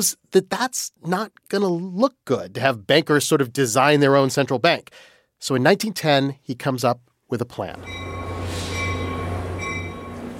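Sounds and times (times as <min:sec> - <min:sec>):
speech: 0:00.0 - 0:08.3
train rumbling past at a train station: 0:07.8 - 0:10.3.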